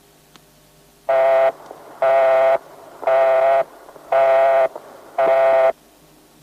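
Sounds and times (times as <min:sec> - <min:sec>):
American telephone busy tone for an engaged line: 0:01.1 - 0:05.7.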